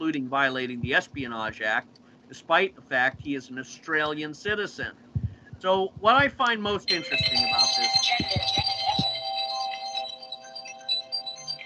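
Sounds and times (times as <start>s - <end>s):
speech: 0.1s - 5.0s, 5.6s - 8.7s
low thumps: 0.7s - 1.7s, 3.0s - 3.4s, 4.5s - 9.2s
phone ringtone with bright warbling electronic tones: 6.8s - 11.6s.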